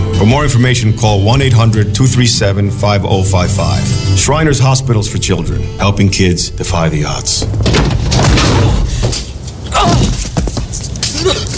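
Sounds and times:
speech: 0.2 - 8.0
person slamming hard into a door with a thud and rattle: 7.4 - 10.4
scuffling knocks and shuffling noises: 7.4 - 11.5.

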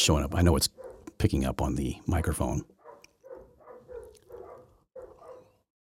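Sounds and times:
speech: 0.0 - 2.8
two dogs barking: 0.6 - 1.2, 2.0 - 5.7.

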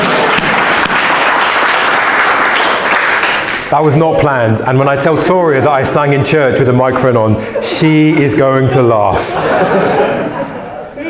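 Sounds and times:
audience applause in church: 0.0 - 3.7
speech: 3.7 - 10.6
laughter: 5.0 - 11.0.

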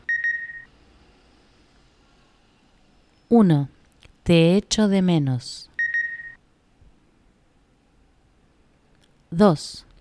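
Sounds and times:
electronic beep signaling the listener to repeat in a Spanish practice exercise: 0.0 - 0.7, 5.8 - 6.4
speech: 3.3 - 5.7, 9.3 - 9.9.

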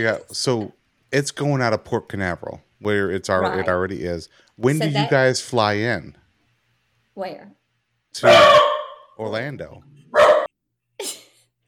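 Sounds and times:
speech: 0.0 - 6.2, 7.2 - 7.6, 8.2 - 10.3
sharp dog barks: 8.2 - 9.1, 10.1 - 10.5.

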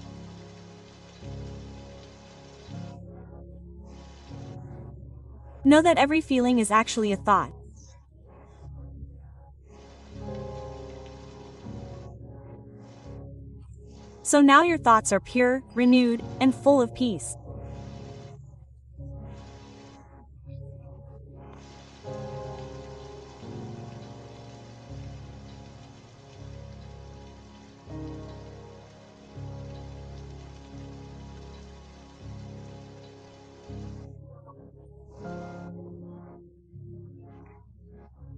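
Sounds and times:
steady rain falling: 0.0 - 3.0, 3.9 - 4.8, 9.7 - 12.2, 14.0 - 18.4, 19.3 - 20.0, 21.5 - 34.1
speech: 5.6 - 7.6, 14.3 - 17.4.

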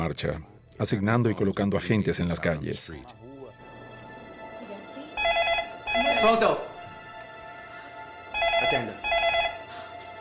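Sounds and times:
speech: 0.0 - 3.2, 6.2 - 6.6
telephone ringing with electronic bell: 5.2 - 6.5, 8.3 - 9.7.

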